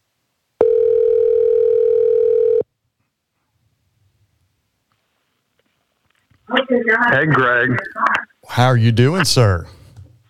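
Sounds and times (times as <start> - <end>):
loud steady telephone tone: 0.6 - 2.6
speech: 6.7 - 9.8.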